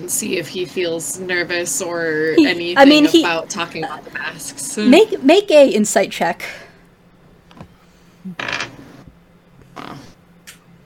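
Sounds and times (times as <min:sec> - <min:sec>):
speech: 0:00.1 - 0:06.6
new dice rolling at a tabletop role-playing game session: 0:08.4 - 0:09.0.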